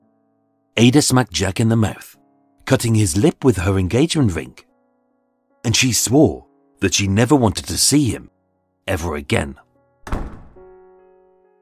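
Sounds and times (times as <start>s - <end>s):
speech: 0.8s - 4.7s, 5.6s - 10.2s
heavy door slamming shut: 10.0s - 10.8s.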